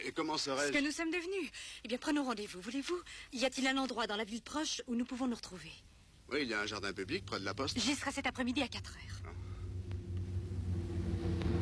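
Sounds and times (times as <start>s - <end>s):
speech: 0.0s - 9.4s
car arriving with a low steady engine rumble: 6.6s - 11.5s.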